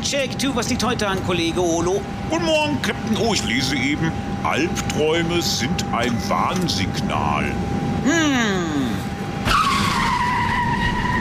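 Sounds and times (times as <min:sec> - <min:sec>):
speech: 0:00.0 - 0:08.8
car engine rumbling: 0:00.0 - 0:11.1
car tyres screeching in a skid: 0:09.4 - 0:11.1.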